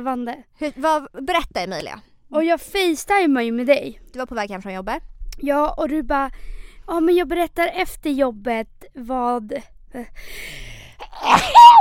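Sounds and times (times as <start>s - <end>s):
speech: 0.0s - 11.8s
person sneezing: 11.1s - 11.8s.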